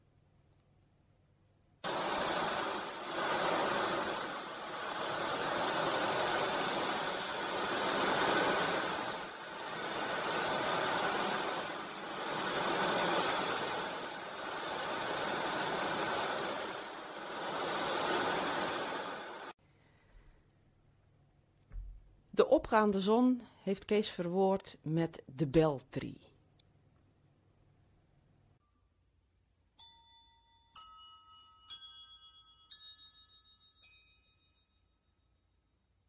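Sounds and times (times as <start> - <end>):
ocean drum filled with tiny fine beads turned back and forth: 1.8 - 19.6
speech: 22.5 - 26.2.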